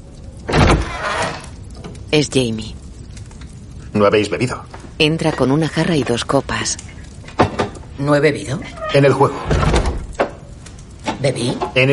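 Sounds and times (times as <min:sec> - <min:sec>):
door opening with a scrape and sliding rumble: 0:00.4 - 0:02.0, 0:08.7 - 0:10.4
speech: 0:02.1 - 0:02.8, 0:04.0 - 0:06.9, 0:08.0 - 0:09.8, 0:11.2 - 0:11.9.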